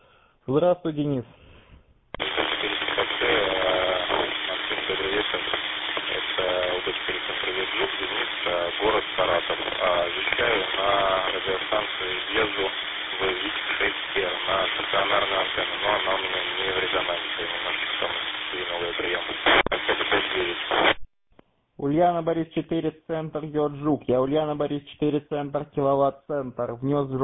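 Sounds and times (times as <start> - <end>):
speech: 0.5 - 1.4, 6.8 - 21.0, 21.8 - 27.2
heavy radio transmission hiss and crackle: 2.2 - 21.1.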